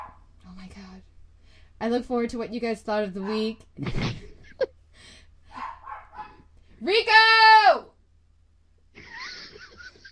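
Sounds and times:
dog barking: 0:00.0 - 0:00.3, 0:03.2 - 0:03.6, 0:05.5 - 0:06.4
speech: 0:01.8 - 0:04.7, 0:06.8 - 0:07.9.

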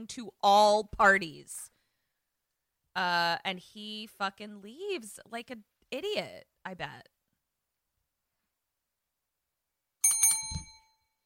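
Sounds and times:
speech: 0:00.0 - 0:01.7, 0:03.0 - 0:07.2
bicycle-style bell ringing: 0:10.0 - 0:11.0.

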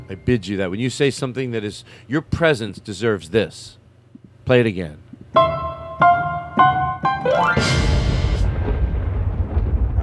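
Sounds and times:
speech: 0:00.1 - 0:03.8, 0:04.5 - 0:05.6
three punchy musical stabs ending a theme song: 0:05.4 - 0:08.8
explosion sound effect with rumbling boom: 0:07.5 - 0:10.0.

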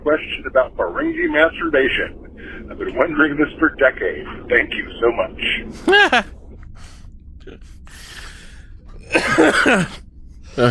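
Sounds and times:
speech: 0:00.1 - 0:06.4, 0:09.1 - 0:10.0
high-pitched laugh: 0:05.8 - 0:06.3
wheezy breaths: 0:07.8 - 0:08.8
loud rough cough: 0:09.1 - 0:10.0.

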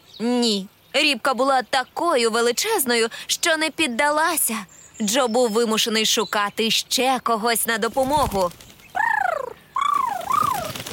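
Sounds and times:
speech: 0:00.2 - 0:08.6
pigeon cooing: 0:09.0 - 0:10.9.

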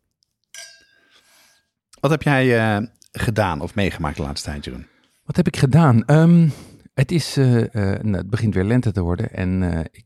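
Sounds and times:
wine glasses clinking in a toast: 0:00.5 - 0:01.2
speech: 0:02.0 - 0:10.0.

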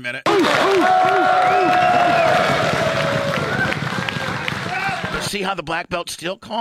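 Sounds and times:
speech: 0:00.0 - 0:01.8, 0:05.3 - 0:06.5
whoops from spectators: 0:00.3 - 0:05.2
loud crowd of excited spectators cheering and shouting: 0:00.3 - 0:05.3.

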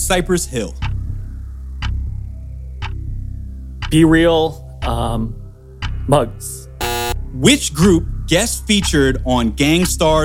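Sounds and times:
speech: 0:00.1 - 0:00.8, 0:03.9 - 0:05.4, 0:06.1 - 0:06.7, 0:07.3 - 0:10.2
quiz countdown clock ticking: 0:06.8 - 0:07.2.

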